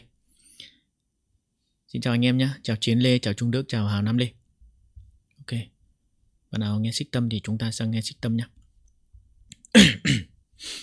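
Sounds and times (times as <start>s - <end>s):
speech: 1.9s - 4.4s, 5.5s - 5.7s, 6.5s - 8.6s
person coughing from a sore throat: 9.7s - 10.4s.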